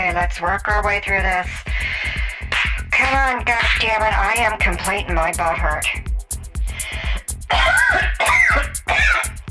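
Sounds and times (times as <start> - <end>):
speech: 0.2 - 2.1, 3.0 - 6.1
heavy wet coughing fit with raspy throat-clearing: 7.5 - 9.4.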